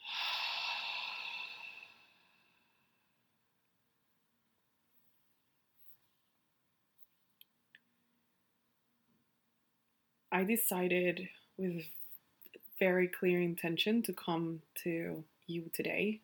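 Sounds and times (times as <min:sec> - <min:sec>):
deep slow breath let out during a guided breathing exercise: 0:00.0 - 0:03.0
faint small clicks: 0:07.0 - 0:07.9
speech: 0:10.3 - 0:12.0, 0:12.8 - 0:16.2.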